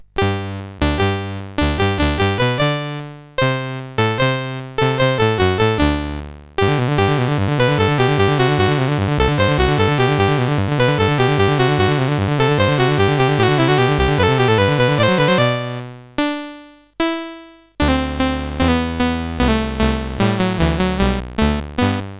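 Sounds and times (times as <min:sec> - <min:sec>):
MOS 8580 SID chip game music: 0:00.0 - 0:22.1.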